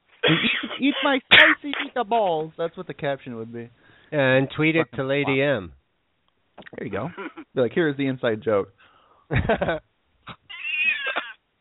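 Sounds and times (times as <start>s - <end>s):
speech: 0.3s - 5.8s, 6.6s - 10.4s
cat yowling: 10.5s - 11.2s.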